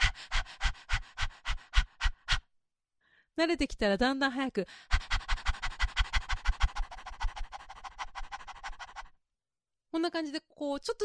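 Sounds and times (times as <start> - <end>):
human voice imitating a dog's panting: 0.0 - 2.5, 4.8 - 9.2
speech: 3.4 - 5.0, 10.0 - 11.0.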